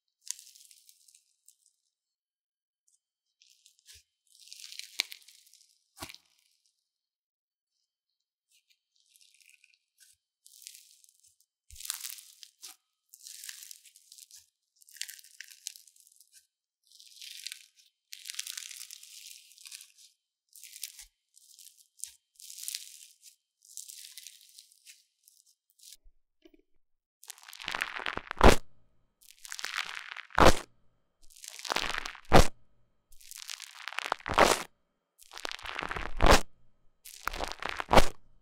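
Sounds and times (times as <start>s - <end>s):
crunchy slime being squeezed: 27.2s - 38.3s.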